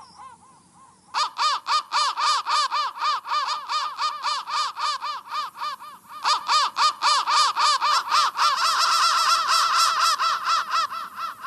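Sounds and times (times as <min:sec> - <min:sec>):
crow rapid rasping caws: 0:00.0 - 0:11.4.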